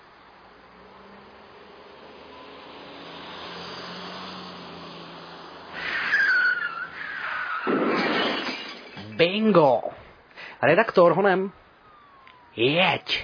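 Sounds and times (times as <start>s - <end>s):
cars approaching along a road: 0.0s - 9.1s, 11.5s - 13.2s
brief high squeal: 5.8s - 7.7s
speech: 9.4s - 10.0s, 10.6s - 11.6s, 12.6s - 13.2s.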